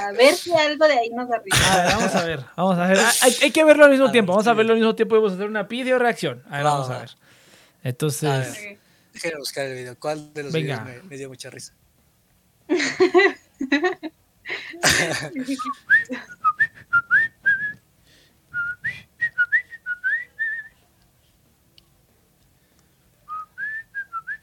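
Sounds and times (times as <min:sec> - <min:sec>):
speech: 0:00.1 - 0:11.8, 0:12.7 - 0:17.3
voice and laughter-like sounds: 0:12.7 - 0:16.4
person whistling a light elevator-music tune: 0:15.5 - 0:17.8, 0:18.6 - 0:20.8, 0:23.3 - 0:24.4.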